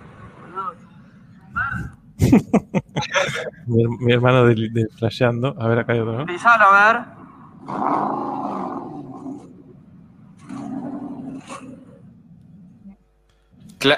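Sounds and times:
laughter: 2.2s - 3.7s
speech: 3.4s - 8.3s
multi-cylinder engine revving: 7.5s - 12.3s.

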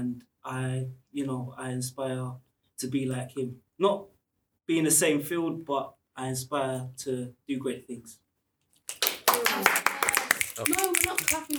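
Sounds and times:
speech: 0.0s - 8.2s, 10.6s - 11.5s
group of people snapping fingers: 8.9s - 11.5s.

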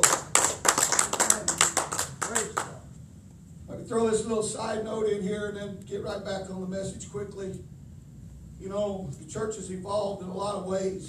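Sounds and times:
church congregation clapping hands in praise: 0.0s - 2.8s
speech: 3.9s - 7.7s, 8.6s - 11.0s.

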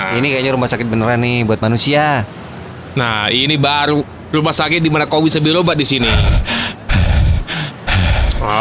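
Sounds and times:
speech: 0.1s - 6.6s
heavy panting after exertion: 6.0s - 8.5s.

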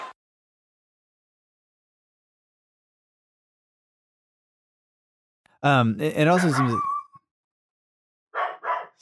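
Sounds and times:
speech: 5.6s - 6.9s
dog barking: 6.3s - 7.0s, 8.3s - 9.0s
dog yelping: 6.3s - 7.2s, 8.3s - 9.0s.

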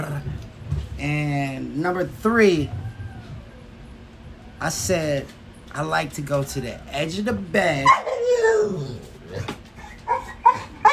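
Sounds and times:
speech: 1.0s - 2.8s, 4.6s - 9.6s
excited dog whining: 2.4s - 4.7s, 7.8s - 10.9s
dog yipping and barking: 7.8s - 8.6s, 10.1s - 10.9s.

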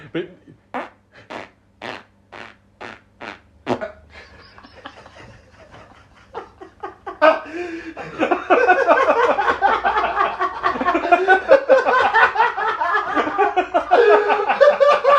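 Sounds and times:
speech: 0.1s - 0.6s
short fart sounds: 0.7s - 4.0s
people chuckling and laughing: 3.8s - 15.1s.

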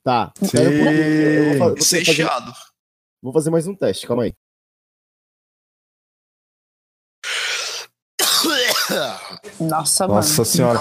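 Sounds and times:
speech: 0.0s - 4.4s, 9.0s - 10.7s
harsh breathy coughing into a microphone: 8.2s - 9.5s.

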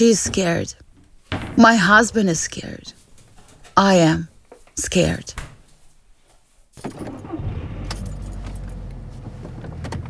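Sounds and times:
speech: 0.0s - 0.8s, 1.6s - 3.0s, 3.8s - 5.4s
car engine rumbling from inside the vehicle while driving: 7.0s - 10.0s.

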